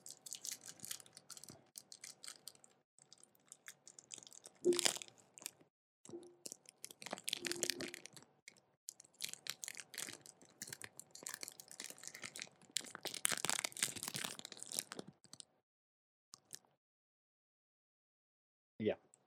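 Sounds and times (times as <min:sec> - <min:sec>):
crunching and wet chewing of chocolate: 0:00.0 - 0:05.7, 0:06.4 - 0:15.5.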